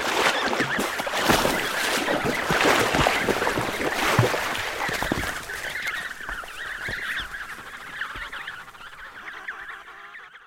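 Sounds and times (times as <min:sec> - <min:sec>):
Emperor penguin chicks giving warbling whistled calls: 0:00.6 - 0:10.4.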